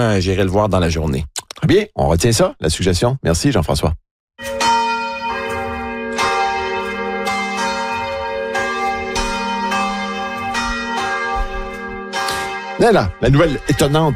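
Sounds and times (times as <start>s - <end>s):
speech: 0.0s - 4.6s, 12.8s - 14.1s
church bells ringing: 4.4s - 14.1s.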